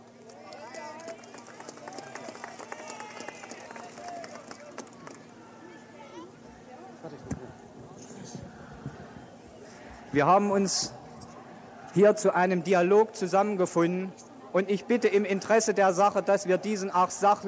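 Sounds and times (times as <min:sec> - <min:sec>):
loud babble: 0:00.0 - 0:17.4
large crowd shouting in protest: 0:00.4 - 0:13.7
speech: 0:10.1 - 0:11.0, 0:12.0 - 0:17.4.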